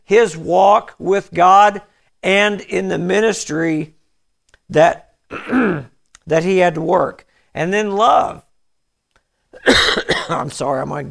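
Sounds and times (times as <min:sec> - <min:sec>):
speech: 0:00.1 - 0:04.0, 0:04.7 - 0:08.4, 0:09.5 - 0:11.0
preacher coughing mid-sermon: 0:05.3 - 0:05.9, 0:09.6 - 0:10.5
preacher clearing his throat mid-sermon: 0:05.3 - 0:06.0, 0:09.6 - 0:10.4.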